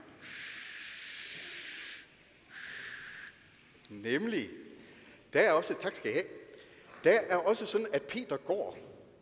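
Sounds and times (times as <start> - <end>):
person blowing air through the mouth to imitate wind in a rainstorm: 0.2 - 3.4
speech: 3.9 - 4.6, 5.3 - 6.4, 7.0 - 9.0.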